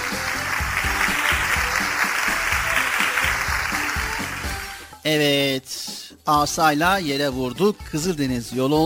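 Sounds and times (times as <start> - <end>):
group applauding: 0.0 - 4.9
speech: 5.0 - 8.8.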